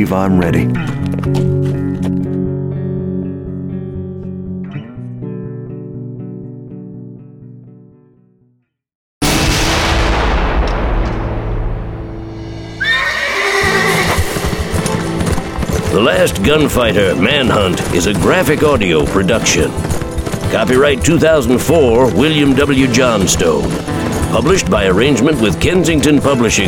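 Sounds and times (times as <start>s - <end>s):
speech: 0.0s - 1.6s, 16.1s - 26.6s
hooves clip-clopping: 0.8s - 2.5s, 12.8s - 26.6s
heavy booming blasts and rumbling: 9.2s - 12.8s
horse neighing: 12.8s - 22.6s.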